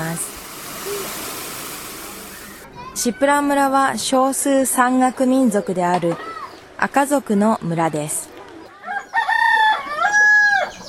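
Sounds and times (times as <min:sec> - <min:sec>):
speech: 0:00.0 - 0:01.3, 0:03.0 - 0:08.2
rooster crowing in a mountain village: 0:08.8 - 0:10.8.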